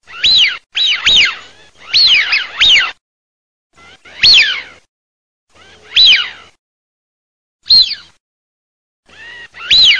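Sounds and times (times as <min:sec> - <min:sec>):
Eurasian wigeon whistling: 0:00.1 - 0:02.9, 0:04.1 - 0:04.7, 0:05.9 - 0:06.4, 0:07.7 - 0:08.2, 0:09.3 - 0:09.9.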